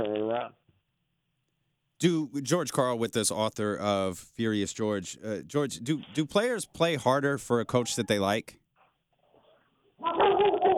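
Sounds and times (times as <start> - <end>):
speech: 2.0 - 8.6
dog barking: 10.0 - 10.7.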